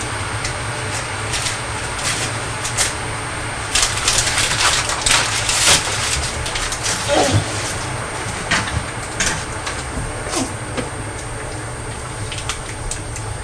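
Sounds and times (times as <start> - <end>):
low steady hum: 0.0 - 13.4
paper bag from a sausage roll being crumpled and handled: 3.7 - 8.5.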